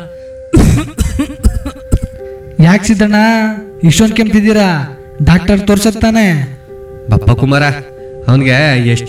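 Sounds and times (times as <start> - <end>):
deep persistent coughing from a man who smokes bidis and cigarettes: 0.6 - 2.2
speech: 2.6 - 9.0.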